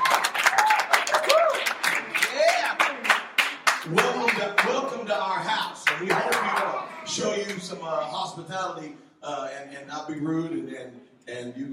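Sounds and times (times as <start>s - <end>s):
group of people at a worship gathering clapping: 0.0s - 7.7s
speech: 7.1s - 11.7s.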